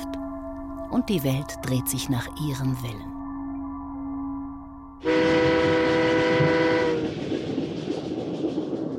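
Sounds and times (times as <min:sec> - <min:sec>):
speech: 0:00.9 - 0:03.2
train horn on the Transatlantic railway: 0:05.0 - 0:07.2
moving train rumbling: 0:05.0 - 0:08.9.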